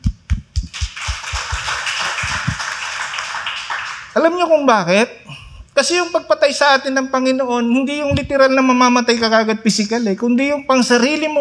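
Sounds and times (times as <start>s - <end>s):
audience clapping: 0.0s - 4.4s
speech: 4.2s - 5.2s, 5.8s - 11.3s.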